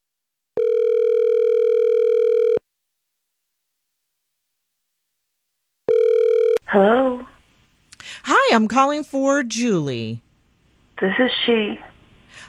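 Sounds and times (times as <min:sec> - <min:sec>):
telephone ringback tone on an outgoing call: 0:00.6 - 0:02.6, 0:05.9 - 0:06.6
speech: 0:06.8 - 0:07.3, 0:08.5 - 0:10.2, 0:11.0 - 0:12.4.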